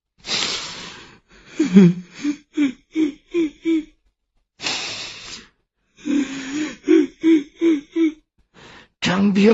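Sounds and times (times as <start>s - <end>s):
person sobbing with gasping inhales: 1.4s - 4.0s, 6.0s - 8.3s.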